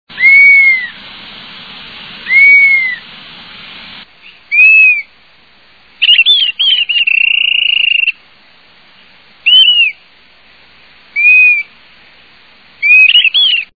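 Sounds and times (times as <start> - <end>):
Dusky-capped Flycatcher singing: 0.1 - 1.0, 2.2 - 3.0, 4.2 - 5.1, 6.0 - 8.2, 9.4 - 10.0, 11.1 - 11.8, 12.8 - 13.7.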